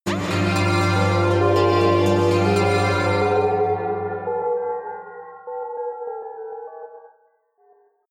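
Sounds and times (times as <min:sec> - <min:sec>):
synth drones: 0:00.0 - 0:05.8
high synth bells roll: 0:00.1 - 0:05.1.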